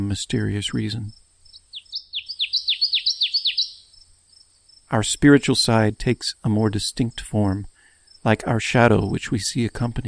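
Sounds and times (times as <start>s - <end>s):
speech: 0.0s - 1.2s, 4.9s - 10.0s
small bird singing at night: 0.6s - 5.3s.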